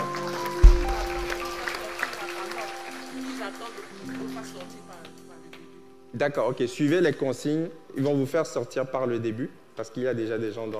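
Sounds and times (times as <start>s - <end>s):
crowd clapping in a large room: 0.0s - 5.8s
speech: 6.2s - 10.7s.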